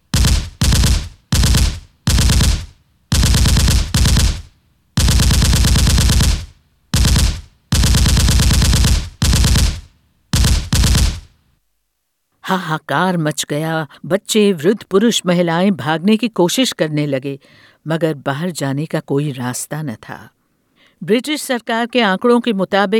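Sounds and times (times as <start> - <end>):
automatic gunfire bursts during a massacre of a trapped crowd: 0.1 - 9.8, 10.4 - 11.2
speech: 12.5 - 20.4, 21.0 - 22.9.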